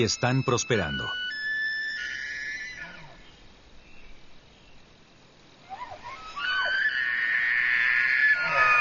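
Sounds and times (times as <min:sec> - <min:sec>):
speech: 0:00.0 - 0:01.3
Manitoba elk bugling mating call: 0:00.0 - 0:03.4, 0:05.6 - 0:08.7.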